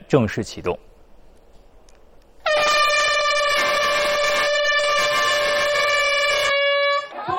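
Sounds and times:
speech: 0.1 - 0.9
horn blast signaling the start of a charity challenge event: 2.4 - 7.2.

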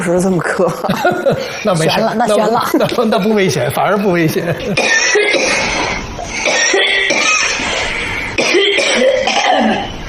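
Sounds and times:
speech: 0.0 - 5.7
laughter: 0.8 - 5.7
harsh raspy chesty coughs: 4.6 - 10.0.

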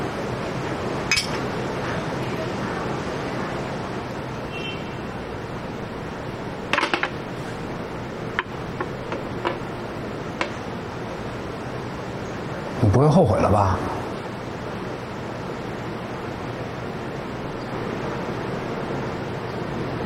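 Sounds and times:
steady low hum: 0.0 - 20.0
glasses clinking in a toast: 1.1 - 1.4
speech: 13.0 - 14.0.

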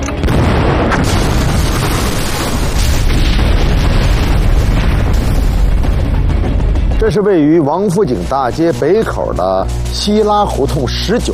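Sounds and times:
brief rumble before a house explosion: 0.1 - 7.0
falling debris from a house explosion: 0.2 - 6.1
time bomb house explosion: 0.2 - 6.7
speech: 7.1 - 11.3.

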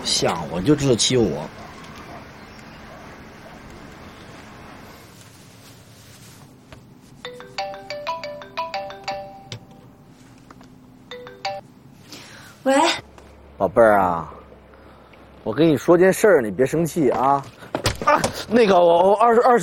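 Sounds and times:
speech: 0.0 - 1.6, 13.6 - 14.4, 15.4 - 19.6
melodic phone ringtone during a call: 7.2 - 9.9, 11.1 - 11.7.

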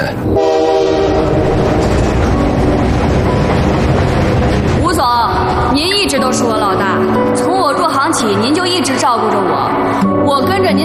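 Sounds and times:
train rumbling along tracks in heavy snowfall: 0.0 - 10.8
sustained horn-like tone of train: 0.2 - 4.6
speech: 8.2 - 10.8.

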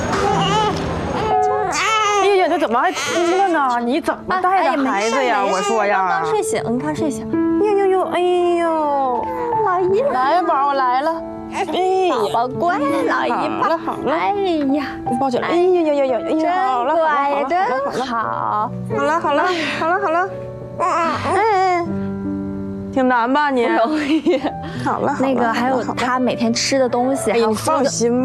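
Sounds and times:
baby crying after waking up: 0.1 - 3.9, 4.7 - 6.3, 20.8 - 21.8
adults talking: 0.1 - 21.9, 22.9 - 28.2.

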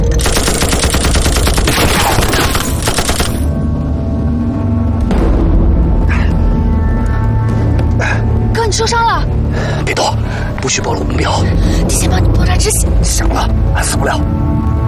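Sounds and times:
machine gun fire in rapid sustained bursts: 0.2 - 3.5
low rumbling background: 3.4 - 14.8
speech: 10.7 - 14.7.

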